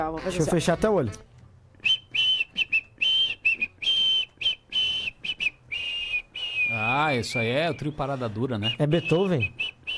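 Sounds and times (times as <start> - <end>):
speech: 0.0 - 1.3, 6.7 - 9.6
person whistling a melody while inhaling: 1.9 - 6.9.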